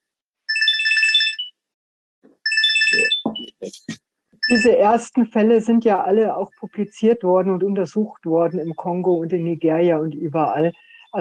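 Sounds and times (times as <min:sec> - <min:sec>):
electronic mobile phone ringtone: 0:00.5 - 0:01.6, 0:02.4 - 0:03.4, 0:04.4 - 0:04.8
speech: 0:02.9 - 0:11.1.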